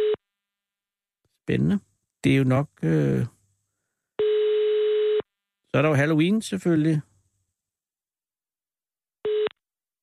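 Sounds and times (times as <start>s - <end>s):
speech: 1.5s - 3.4s, 5.7s - 7.1s
telephone line tone before an answering machine message: 4.2s - 5.2s, 9.2s - 9.6s.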